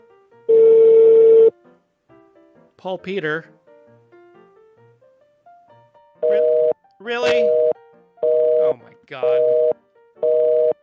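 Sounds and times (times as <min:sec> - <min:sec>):
telephone line ringing tone of an outgoing call: 0:00.5 - 0:01.5, 0:06.2 - 0:10.8
speech: 0:02.8 - 0:03.6, 0:07.1 - 0:07.6.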